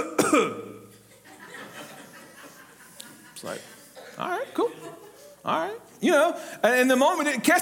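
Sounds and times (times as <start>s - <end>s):
speech: 0.0s - 0.6s, 3.4s - 7.6s
single sharp cough during a church gathering: 0.0s - 0.9s, 4.0s - 4.3s
laughter: 0.9s - 5.4s.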